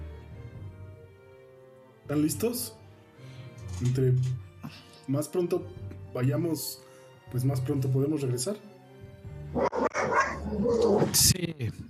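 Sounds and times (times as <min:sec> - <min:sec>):
speech: 0:02.1 - 0:02.8, 0:03.8 - 0:08.7, 0:10.6 - 0:11.8
dogs barking fiercely: 0:09.6 - 0:11.1.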